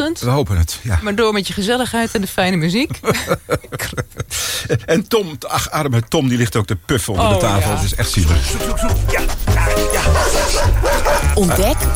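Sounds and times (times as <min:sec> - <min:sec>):
speech: 0:00.1 - 0:11.9
laughter: 0:02.9 - 0:04.9, 0:08.2 - 0:11.9
dog whining: 0:08.6 - 0:11.9
dog barking in yappy bursts: 0:09.8 - 0:11.6.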